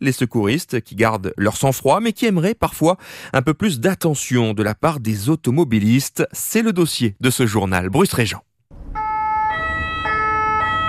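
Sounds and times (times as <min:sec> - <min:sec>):
speech: 0:00.0 - 0:08.5
two-tone siren of a yellow ambulance stuck in traffic: 0:08.8 - 0:10.8.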